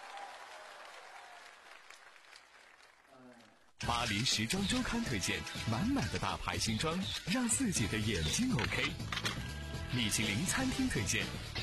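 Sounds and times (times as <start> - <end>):
audience applause for two teachers: 0.0 - 3.6
speech: 3.8 - 11.6.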